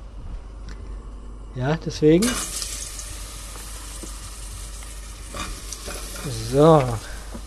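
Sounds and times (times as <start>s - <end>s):
speech: 1.6s - 2.6s, 6.5s - 7.1s
mushrooms frying in hot oil: 2.2s - 7.4s.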